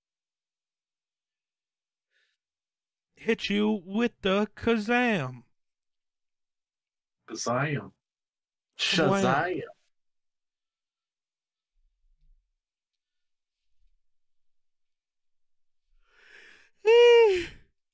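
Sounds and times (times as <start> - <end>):
speech: 3.2 - 5.5, 7.3 - 8.0, 8.8 - 9.8, 16.8 - 17.6
person yawning: 16.8 - 17.6.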